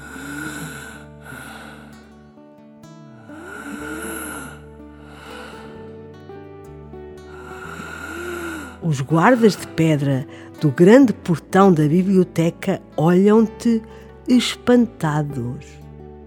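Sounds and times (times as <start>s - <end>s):
deep breathing from someone worn out after a long walk: 0.0s - 6.4s, 7.2s - 8.9s, 10.2s - 10.6s
sustained musical backdrop: 0.0s - 16.2s
speech: 8.8s - 15.8s.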